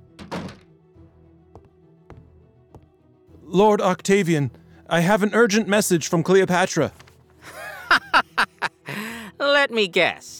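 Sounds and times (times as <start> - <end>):
door thudding shut: 0.0 - 0.8
speech: 3.5 - 7.6, 9.7 - 10.3
laughter: 7.4 - 9.1.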